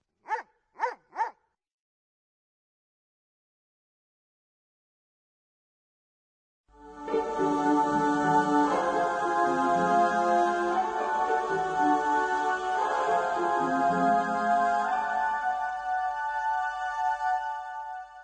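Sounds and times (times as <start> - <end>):
dog barking loudly: 0.2 - 1.4
steady music: 6.8 - 18.1.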